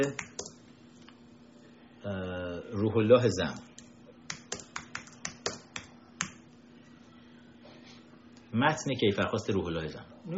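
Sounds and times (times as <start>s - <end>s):
speech: 0.0s - 0.3s, 2.0s - 3.7s, 8.6s - 10.3s
computer keyboard typing clicks: 0.0s - 0.6s, 3.8s - 6.4s
soft room noise: 0.0s - 10.3s.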